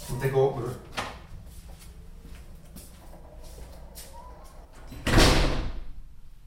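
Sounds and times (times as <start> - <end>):
speech: 0.1 - 0.9
front door closing with a thump and rattle: 4.8 - 5.9.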